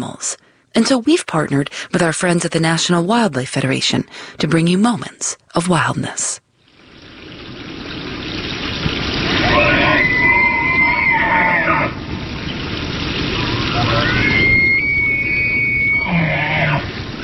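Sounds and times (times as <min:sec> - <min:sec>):
speech: 0:00.2 - 0:06.4
bull elk bugling: 0:08.9 - 0:17.2.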